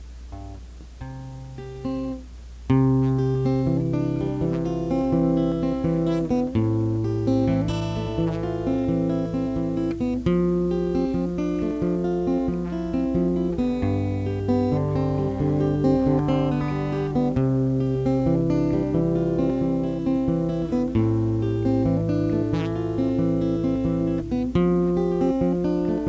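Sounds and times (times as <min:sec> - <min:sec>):
acoustic fingerpicking: 0:00.2 - 0:26.0.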